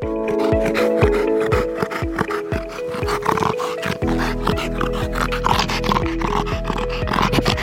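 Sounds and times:
steady tonal music: 0.0s - 7.6s
dog snorting from soft palate: 0.1s - 7.6s.

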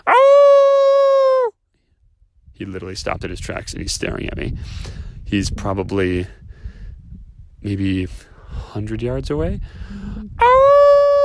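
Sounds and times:
person outdoors in California imitating a coyote howl: 0.0s - 1.5s, 10.2s - 11.2s
speech: 2.6s - 6.4s, 7.6s - 10.2s.

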